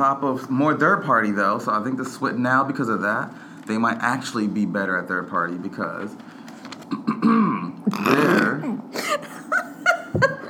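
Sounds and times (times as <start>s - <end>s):
speech: 0.0s - 6.3s, 7.0s - 9.4s
person clearing their throat: 6.9s - 9.0s
laughter: 8.9s - 10.4s.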